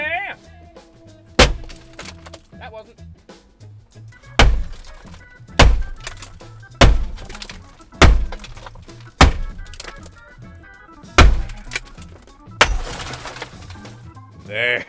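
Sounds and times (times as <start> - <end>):
hammer striking a car window: 1.4 - 2.4, 4.4 - 10.1, 11.2 - 12.0, 12.6 - 13.4
safety glass shattering: 1.4 - 2.5, 4.4 - 10.2, 11.2 - 14.1
speech: 2.7 - 3.2.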